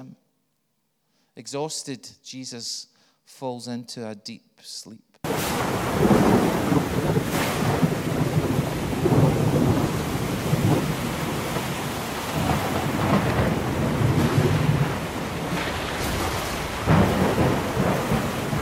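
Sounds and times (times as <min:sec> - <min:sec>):
speech: 0:01.4 - 0:07.6
gusting wind: 0:05.3 - 0:18.6
heavy rain: 0:05.3 - 0:18.6
rolling thunder: 0:05.3 - 0:18.6.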